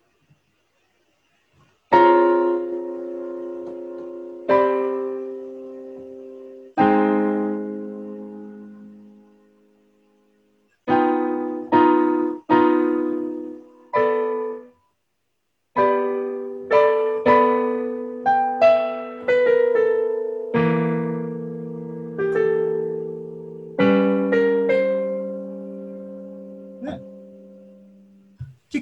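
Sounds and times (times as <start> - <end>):
piano playing a slow melody over sustained chords: 1.9 - 9.9, 10.9 - 14.8, 15.8 - 28.4.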